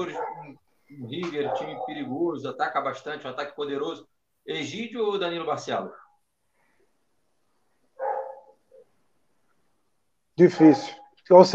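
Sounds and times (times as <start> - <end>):
dog yipping softly: 0.0 - 0.5, 1.4 - 2.1, 8.0 - 8.8, 10.6 - 11.1
dog barking: 0.0 - 0.6, 1.2 - 2.2, 8.0 - 8.8, 10.5 - 11.2
speech: 0.0 - 6.0, 10.4 - 11.5.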